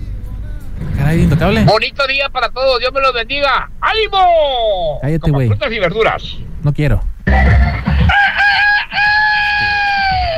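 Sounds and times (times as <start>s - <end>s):
low rumbling noise: 0.0s - 10.3s
speech: 1.1s - 7.9s
rooster crowing: 7.6s - 10.3s.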